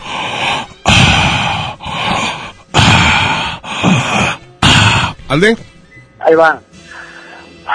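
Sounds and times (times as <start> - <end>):
person breathing heavily into a microphone: 0.0 - 5.2, 6.8 - 7.6
speech: 5.3 - 6.7.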